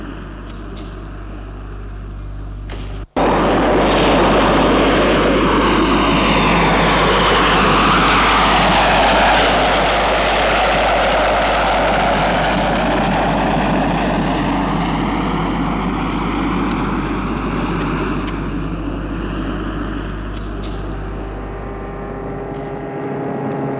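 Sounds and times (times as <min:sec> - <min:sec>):
small private propeller airplane landing at airport: 0:00.0 - 0:23.7.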